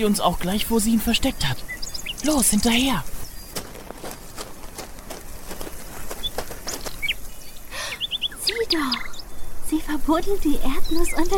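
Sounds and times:
speech: 0.0 - 3.2, 10.1 - 11.3
magpie high chirps: 0.0 - 4.1, 6.0 - 11.3
magpie wings flapping in flight: 2.5 - 7.6.

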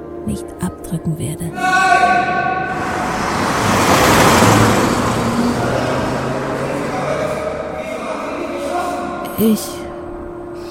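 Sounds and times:
speech: 0.2 - 3.8, 9.4 - 9.8
car speeding toward a person, engine and road noise roaring: 2.1 - 8.6.

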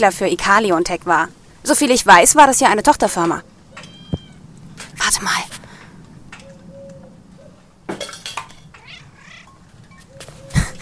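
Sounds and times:
speech: 0.0 - 3.5, 5.0 - 5.6
stray cat meowing: 3.8 - 4.4, 8.7 - 9.6.

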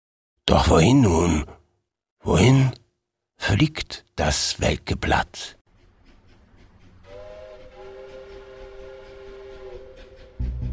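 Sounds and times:
speech: 0.5 - 1.6, 2.2 - 2.8, 3.4 - 5.6
train rolling on rails: 5.7 - 10.7
train whistle: 7.0 - 10.7.

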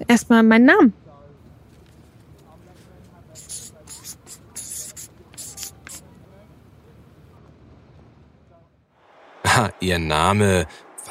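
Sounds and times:
speech: 0.1 - 1.0, 9.6 - 10.8
pen scratching on paper in handwriting: 3.4 - 6.0.

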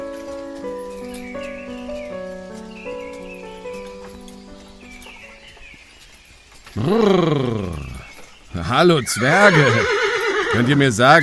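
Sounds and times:
trotting horse hooves clip-clopping: 0.0 - 11.2
speech: 6.8 - 7.9, 8.6 - 11.2
horse whinnying neighs: 6.8 - 11.2.

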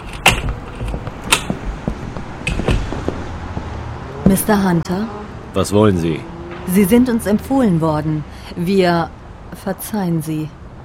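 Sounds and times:
door creaking: 0.0 - 3.3
speech: 4.3 - 10.6.

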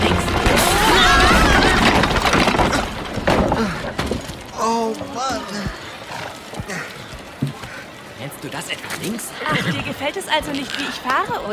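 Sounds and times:
speeding horse-drawn carriage crashing: 0.0 - 4.7
debris shattering: 0.0 - 5.1
splintering wood of a horse-drawn carriage: 0.0 - 6.5
speech: 8.7 - 11.5.

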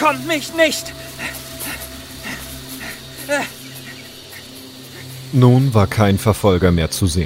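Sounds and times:
speech: 0.0 - 1.4, 3.3 - 3.6, 5.3 - 7.2
man panting, catching his breath: 0.9 - 5.2.

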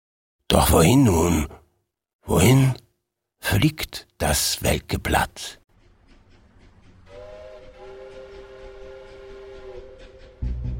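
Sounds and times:
speech: 0.5 - 1.6, 2.3 - 2.8, 3.4 - 5.6
train cars rumbling past: 5.7 - 10.7
train whistle blowing one long steady tone: 7.0 - 10.7.

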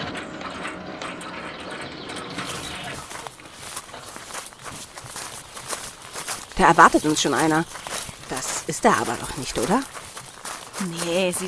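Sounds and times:
gate of a grand house opening with mechanical whirring: 0.0 - 3.0
speech: 6.6 - 7.9, 8.7 - 10.0, 10.8 - 11.4.

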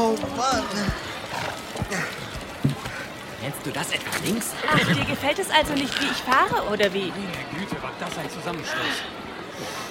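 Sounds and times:
horse hooves clattering at a steady pace: 0.0 - 6.8
horses snorting: 0.6 - 3.1, 4.4 - 6.4
speech: 3.4 - 9.8.

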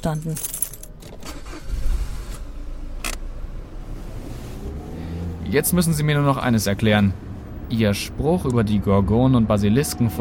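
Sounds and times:
speech: 0.0 - 0.6, 5.5 - 10.1
car driving off: 1.1 - 9.0.

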